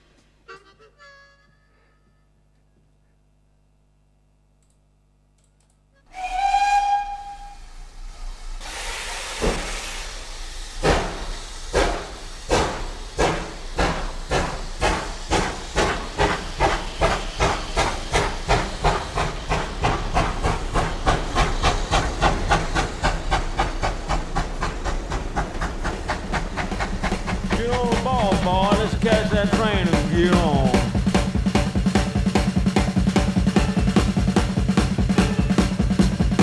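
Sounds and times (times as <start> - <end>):
steam train whistling as it departs: 0.5 - 2.2, 6.0 - 11.3, 27.6 - 36.2
steam train steam hissing: 6.1 - 36.4.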